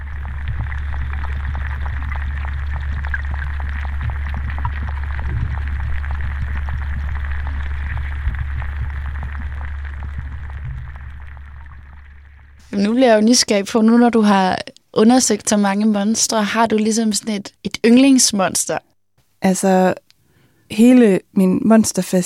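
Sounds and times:
amplified lake water rumbling drone: 0.0 - 13.2
speech: 12.8 - 20.0, 20.7 - 22.2.

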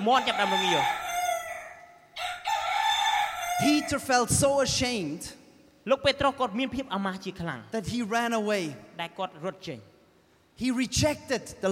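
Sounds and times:
speech: 0.0 - 1.0, 3.6 - 9.9, 10.6 - 11.7
rooster crowing: 0.0 - 4.0.

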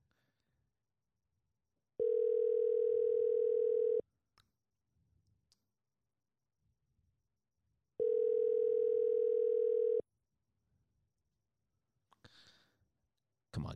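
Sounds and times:
buzzy telephone ringback tone during call: 2.0 - 4.0, 8.0 - 10.0.

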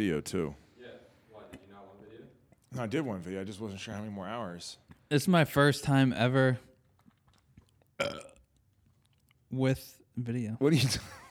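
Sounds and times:
speech: 0.0 - 0.6, 2.7 - 6.7, 8.0 - 8.3, 9.5 - 11.3
loud burp: 8.0 - 8.4.

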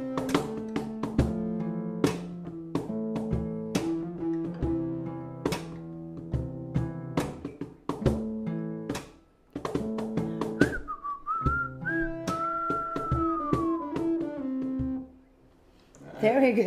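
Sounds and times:
strummed chords and rhythmic accompaniment: 0.0 - 10.7, 11.4 - 15.2
whistled melody in a song: 10.5 - 15.0
speech: 16.2 - 16.6.

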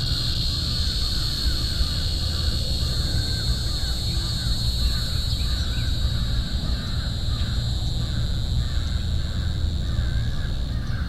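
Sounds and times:
steady shrill cicada drone: 0.0 - 11.0
crow cawing faintly: 6.3 - 11.0.

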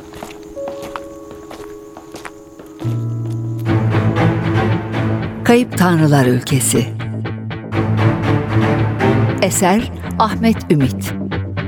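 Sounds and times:
footsteps of two people walking side by side toward a huge oak tree: 0.0 - 4.5
sustained musical background: 0.0 - 11.6
speech: 5.5 - 7.0, 9.5 - 11.2.

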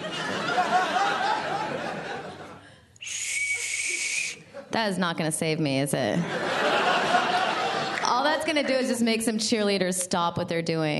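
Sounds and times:
people laughing: 0.0 - 2.7, 6.0 - 9.0
shrill blast of a rape whistle: 3.0 - 4.5
speech: 4.8 - 6.6, 8.4 - 10.9.

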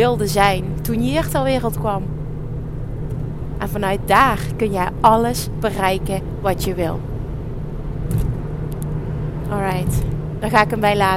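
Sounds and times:
speech: 0.0 - 2.2, 3.6 - 7.1, 9.5 - 11.1
car engine and road noise from inside the vehicle: 0.0 - 11.1.

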